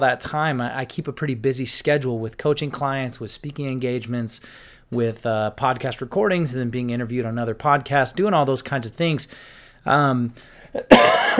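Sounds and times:
speech: 0:00.0 - 0:11.3
person coughing: 0:10.7 - 0:11.3.

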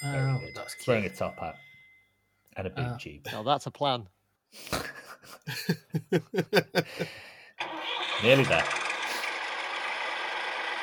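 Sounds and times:
speech: 0:00.0 - 0:01.7, 0:02.6 - 0:07.3, 0:08.2 - 0:08.8
laughter: 0:04.8 - 0:07.2
tractor engine running: 0:07.6 - 0:10.8.

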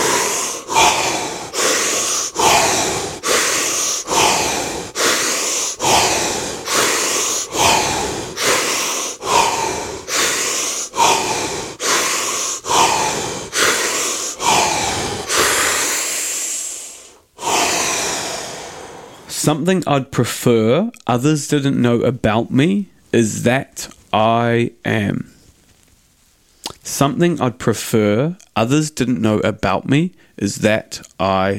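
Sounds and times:
deep breathing exercise: 0:00.0 - 0:19.4
speech: 0:19.4 - 0:25.4, 0:26.9 - 0:31.5.

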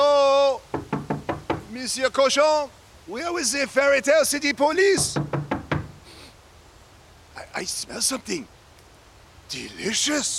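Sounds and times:
faint hiss: 0:00.0 - 0:10.3
knocking on a door: 0:00.7 - 0:01.7, 0:05.0 - 0:06.0
speech: 0:01.8 - 0:05.3, 0:07.6 - 0:08.6, 0:09.5 - 0:10.3.

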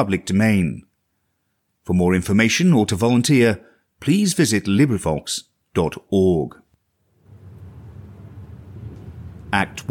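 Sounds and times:
speech: 0:00.0 - 0:00.9, 0:01.8 - 0:06.6, 0:09.5 - 0:09.9
rolling thunder: 0:07.2 - 0:09.9.

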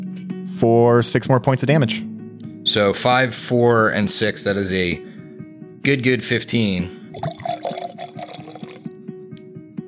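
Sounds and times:
speech: 0:00.2 - 0:05.1, 0:05.8 - 0:07.6
whiskey pouring into a glass: 0:07.1 - 0:08.9.

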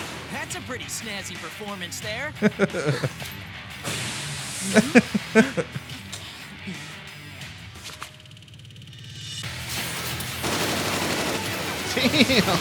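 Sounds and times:
speech: 0:00.5 - 0:03.4, 0:04.7 - 0:05.8, 0:12.0 - 0:12.6
laughter: 0:02.0 - 0:03.4, 0:04.6 - 0:07.2, 0:11.8 - 0:12.6
machine gun fire in a video game: 0:09.8 - 0:12.6.

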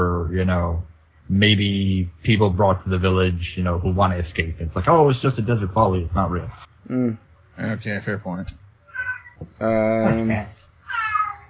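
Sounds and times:
faint noise: 0:00.0 - 0:11.4
speech: 0:00.3 - 0:08.6, 0:09.4 - 0:10.6
cat meowing with a drawn-out rising then falling wail: 0:08.9 - 0:10.2, 0:10.9 - 0:11.4.

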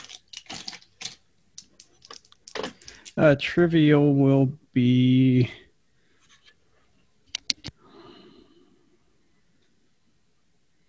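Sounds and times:
plastic dice clattering down through a dice tower: 0:00.0 - 0:03.2
speech: 0:03.2 - 0:05.6.

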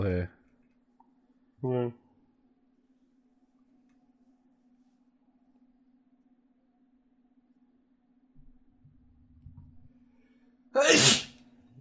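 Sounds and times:
faint steady hum: 0:00.0 - 0:11.7
speech: 0:01.6 - 0:02.0
sneeze: 0:10.8 - 0:11.4.

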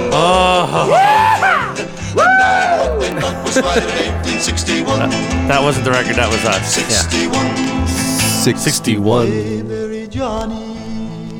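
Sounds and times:
laughter: 0:00.0 - 0:08.4
rebel yells shouted by hosts: 0:00.2 - 0:03.0
speech: 0:03.2 - 0:10.9.

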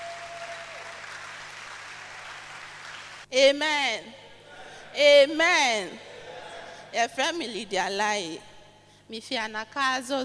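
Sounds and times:
audience clapping hands: 0:00.0 - 0:03.3
speech: 0:03.3 - 0:04.2, 0:05.0 - 0:06.1, 0:06.9 - 0:08.5, 0:09.1 - 0:10.2.

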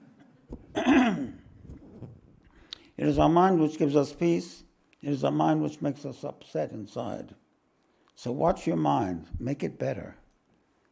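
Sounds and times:
harsh throat-clearing cough from phlegm: 0:00.7 - 0:02.1
speech: 0:03.0 - 0:07.4, 0:08.2 - 0:10.2.

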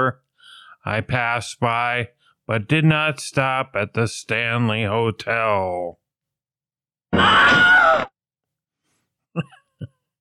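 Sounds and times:
speech: 0:00.0 - 0:00.2, 0:00.8 - 0:06.0, 0:09.4 - 0:09.6
person imitating a spooky haunted-house scream: 0:07.1 - 0:08.2.

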